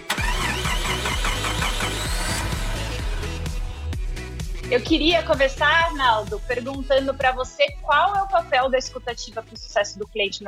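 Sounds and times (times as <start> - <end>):
car engine cranking, starting, revving and idling: 0.1 - 4.3
speech: 4.7 - 10.4.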